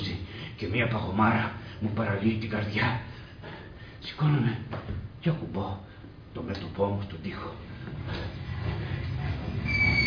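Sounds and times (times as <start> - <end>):
speech: 0.6 - 3.1, 4.0 - 8.3
train starting to move: 7.6 - 10.0
train wheels squealing: 8.1 - 10.0.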